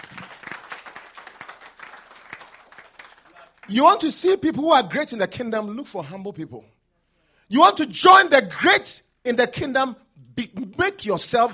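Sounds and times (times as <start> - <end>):
crowd applauding: 0.0 - 3.7
speech: 3.7 - 6.8, 7.5 - 11.5.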